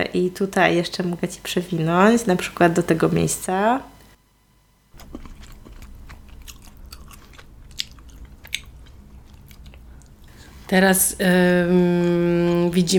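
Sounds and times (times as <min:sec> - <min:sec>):
speech: 0:00.0 - 0:03.9, 0:10.7 - 0:12.9
person chewing instant ramen noodles and small sausages: 0:05.0 - 0:10.5.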